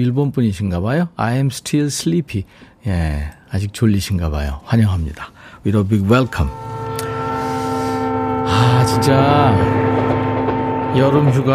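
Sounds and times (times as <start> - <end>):
speech: 0.0 - 6.7, 8.5 - 10.1, 10.9 - 11.5
train horn blaring: 5.9 - 11.5.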